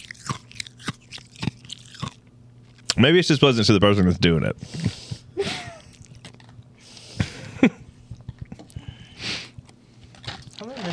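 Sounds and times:
ice being crunched while eaten: 0.0 - 3.0, 9.6 - 10.9
speech: 3.0 - 5.0.

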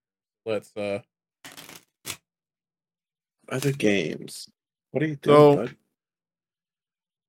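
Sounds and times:
speech: 0.4 - 1.6, 3.5 - 5.8
deck of playing cards being riffle shuffled: 1.5 - 2.2, 3.5 - 3.9.

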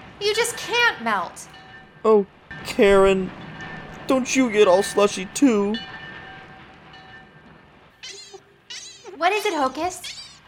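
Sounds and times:
northbound train with a refrigerated boxcar rumbling along the tracks: 0.0 - 8.0
speech: 0.2 - 3.4, 4.1 - 5.9, 9.2 - 10.2.

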